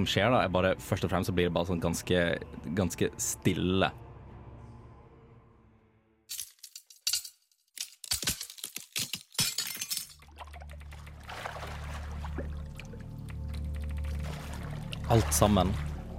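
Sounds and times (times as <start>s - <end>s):
speech: 0.0s - 4.0s, 15.2s - 15.9s
crystal smashed and shattering: 6.3s - 10.2s
crystal thrown into water with a rushing splash: 10.2s - 16.1s.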